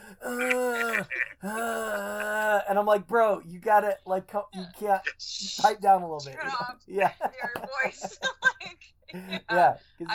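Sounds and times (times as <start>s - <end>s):
person imitating loud heavy breathing: 0.0s - 2.7s
laughter: 0.2s - 1.5s, 6.2s - 9.7s
speech: 2.8s - 10.1s.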